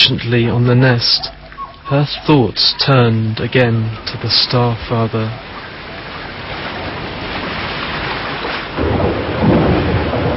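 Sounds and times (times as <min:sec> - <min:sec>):
speech: 0:00.1 - 0:05.5
heavy pouring rain: 0:03.3 - 0:10.3
deep rumble of thunder: 0:04.2 - 0:10.3.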